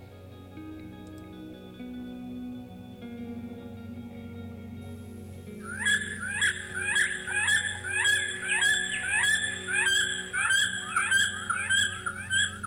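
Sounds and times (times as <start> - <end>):
low hum: 0.0 - 12.6
bald eagle high thin chittering call: 5.6 - 12.6.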